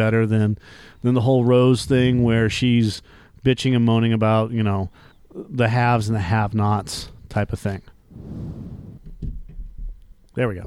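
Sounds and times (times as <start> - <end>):
speech: 0.0 - 9.4, 10.4 - 10.6
person breathing loudly into the microphone: 8.1 - 9.0
microphone bumps: 8.2 - 10.6.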